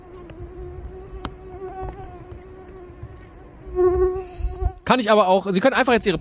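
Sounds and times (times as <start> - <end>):
mosquito whining with thin buzzing tone: 0.0 - 4.8
speech: 4.9 - 6.1.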